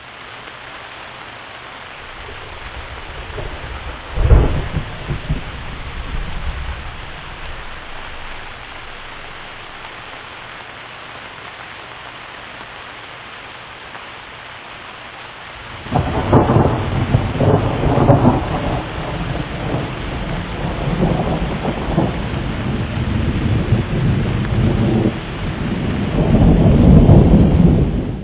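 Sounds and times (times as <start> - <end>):
thunder: 2.0 - 10.2, 15.8 - 28.2.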